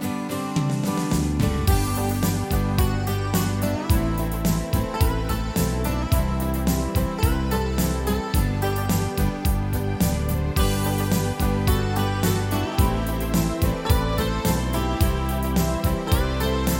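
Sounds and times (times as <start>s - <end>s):
oldies schlager rumba music: 0.3s - 16.7s.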